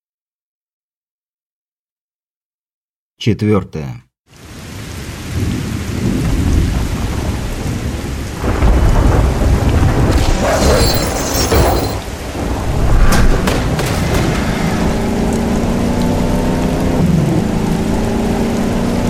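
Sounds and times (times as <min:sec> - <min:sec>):
speech: 0:03.2 - 0:04.0
heavy rain pouring over a city in a thunderstorm: 0:04.3 - 0:19.0
deep thunder rolling: 0:05.3 - 0:17.6.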